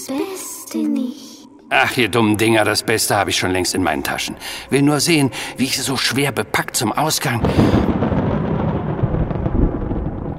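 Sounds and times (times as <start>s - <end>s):
speech: 0.1s - 8.0s
deep underground rumbling and quaking: 4.3s - 10.3s.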